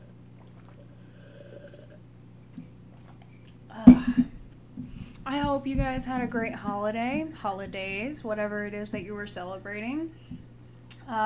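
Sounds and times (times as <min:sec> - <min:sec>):
slurp of coffee from a mug: 0:00.0 - 0:03.5
swallowing sounds: 0:00.0 - 0:06.3
low steady hum: 0:00.0 - 0:11.2
faint clink of the coffee cup: 0:03.9 - 0:04.4
speech: 0:05.5 - 0:10.3.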